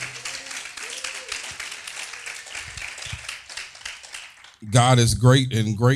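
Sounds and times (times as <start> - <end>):
faint voices and cheers: 0.0 - 3.2
room full of people clapping hands in a chapel: 0.0 - 4.9
speech: 4.6 - 5.9.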